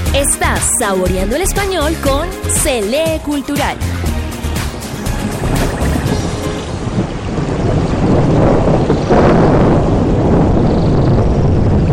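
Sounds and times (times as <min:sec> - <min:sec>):
speech: 0:00.2 - 0:04.1
steady dense rain in an outdoor nature scene: 0:04.1 - 0:11.8.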